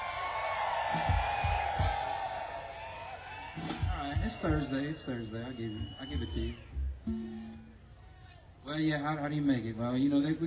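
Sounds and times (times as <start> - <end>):
live audience yelling and whooping: 0.0 - 8.5
speech: 4.3 - 7.7, 8.7 - 10.4.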